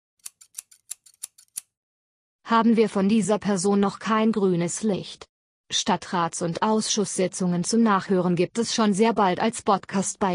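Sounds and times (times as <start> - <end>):
scissors snipping sound effect: 0.2 - 1.7
speech: 2.5 - 10.3.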